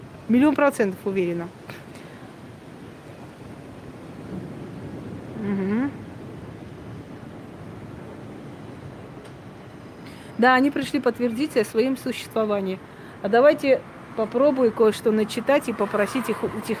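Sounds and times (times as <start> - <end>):
strong wind roaring across the microphone: 0.0 - 16.7
speech: 0.3 - 1.8, 10.4 - 16.7
person murmuring a short affirmation: 5.4 - 6.0.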